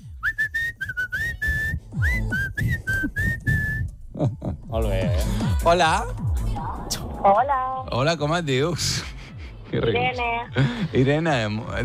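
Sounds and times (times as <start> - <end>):
person whistling a short melodic tune: 0.0 - 4.0
speech: 4.2 - 6.2, 7.2 - 9.1, 9.7 - 11.8.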